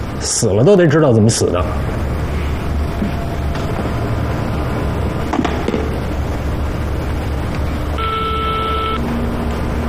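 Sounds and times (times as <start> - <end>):
loud continuous rumbling background: 0.0 - 9.8
speech: 0.2 - 2.0
steady electronic telephone tone: 8.0 - 9.2.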